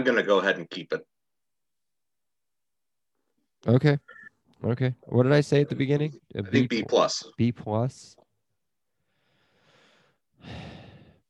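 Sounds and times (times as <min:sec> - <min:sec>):
speech: 0:00.0 - 0:01.1, 0:03.6 - 0:08.2, 0:10.4 - 0:10.8
deep breaths: 0:08.9 - 0:11.2.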